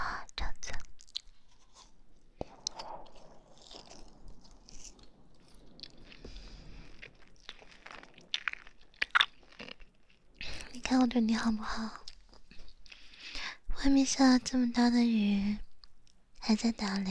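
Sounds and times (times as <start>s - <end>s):
person chewing food: 0.9s - 10.8s, 12.0s - 13.4s
crunching bites on food: 1.0s - 10.2s
speech: 10.9s - 12.0s, 13.8s - 15.6s, 16.5s - 17.0s.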